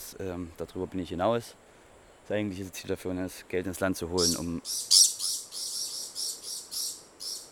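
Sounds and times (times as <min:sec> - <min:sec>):
speech: 0:00.1 - 0:01.7, 0:02.3 - 0:05.0
parrot squawking in harsh shrill calls: 0:04.2 - 0:07.4.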